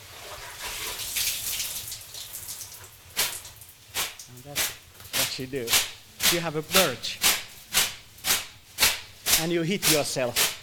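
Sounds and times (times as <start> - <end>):
water splashing onto hot sauna stones: 0.0 - 10.6
steam hissing from hot sauna stones: 3.2 - 10.6
speech: 5.4 - 7.2, 9.4 - 10.5.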